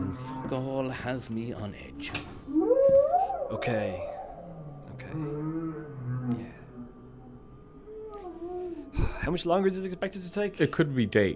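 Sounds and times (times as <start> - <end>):
whale song played through a ship's whale song relay: 0.0 - 1.2, 1.8 - 9.2
speech: 0.5 - 4.2, 5.0 - 6.6, 9.2 - 11.3.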